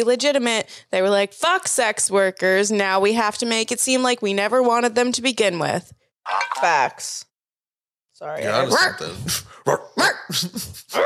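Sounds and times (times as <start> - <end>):
speech: 0.0 - 7.3, 8.2 - 11.0
dog barking: 9.7 - 10.3.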